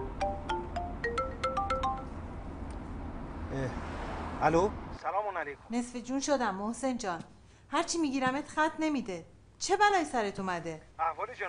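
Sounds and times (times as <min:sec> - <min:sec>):
mobile phone ringtone with electronic melody: 0:00.0 - 0:02.2
speech: 0:04.4 - 0:11.4.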